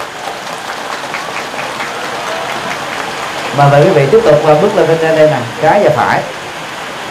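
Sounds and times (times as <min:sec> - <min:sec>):
large crowd clapping loudly in a reverberant lecture hall: 0:00.0 - 0:04.7
speech: 0:03.6 - 0:06.4.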